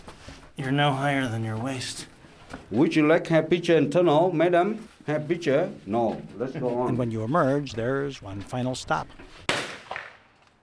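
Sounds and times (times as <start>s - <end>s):
speech: 0.6s - 9.5s
gunshots at a firing range: 9.5s - 10.3s.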